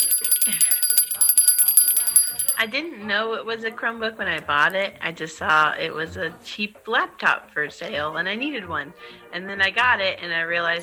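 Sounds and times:
small hand bell ringing: 0.0 - 2.8
speech: 2.6 - 10.8.

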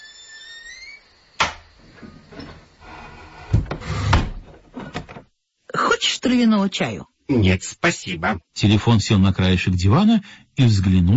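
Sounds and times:
house door being closed carefully: 0.6 - 5.3
speech: 6.1 - 11.1.

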